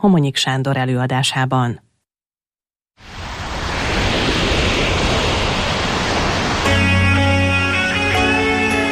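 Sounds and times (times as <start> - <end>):
speech: 0.0 - 1.9
roar of ocean waves: 3.0 - 8.8.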